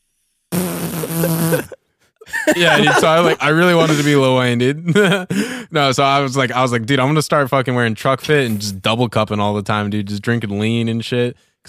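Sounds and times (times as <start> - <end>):
loud buzzy fart: 0.5 - 1.8
laughter: 1.1 - 5.5
speech: 2.5 - 11.6.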